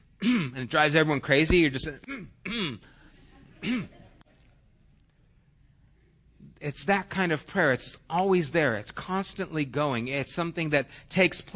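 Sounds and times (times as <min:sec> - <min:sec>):
person clearing throat from a tickle in the throat: 0:00.2 - 0:00.7, 0:02.0 - 0:02.9, 0:03.6 - 0:04.1
speech: 0:00.5 - 0:02.8, 0:06.6 - 0:11.5.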